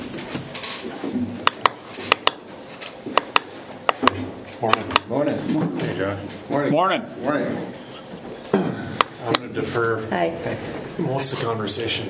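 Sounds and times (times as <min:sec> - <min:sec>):
chairs knocking and clattering as they are pulled up and shifted: 0:00.0 - 0:06.0
speech: 0:04.6 - 0:07.8, 0:09.3 - 0:12.0.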